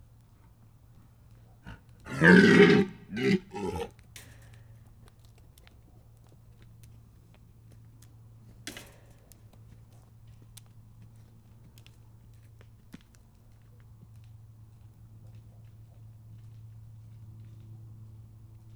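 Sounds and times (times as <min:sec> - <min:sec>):
red deer stag snorting: 0:01.7 - 0:03.9.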